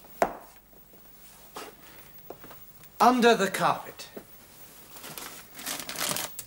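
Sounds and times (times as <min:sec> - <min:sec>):
speech: 0:03.0 - 0:04.1
crumpled paper rustling and crinkling in a waste paper basket: 0:04.8 - 0:06.4.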